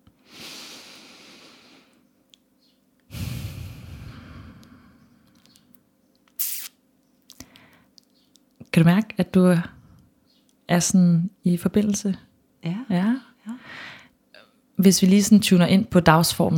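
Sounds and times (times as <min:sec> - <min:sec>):
person breathing deeply during a guided breathing exercise: 0:00.2 - 0:02.0, 0:03.1 - 0:05.3, 0:13.6 - 0:14.1
speech: 0:08.8 - 0:09.8, 0:10.7 - 0:13.1, 0:14.8 - 0:16.5.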